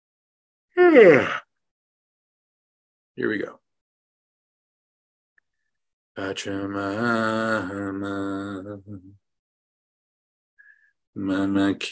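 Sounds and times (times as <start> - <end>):
speech: 0.8 - 1.4, 3.2 - 3.6, 6.2 - 9.2, 11.2 - 11.9
person yawning: 0.8 - 1.5.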